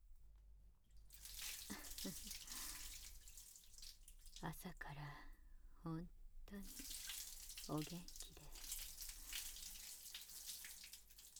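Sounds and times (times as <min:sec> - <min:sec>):
water running to rinse: 0:01.1 - 0:04.6, 0:06.5 - 0:11.3
speech: 0:02.0 - 0:02.4, 0:04.4 - 0:07.0, 0:07.7 - 0:08.6.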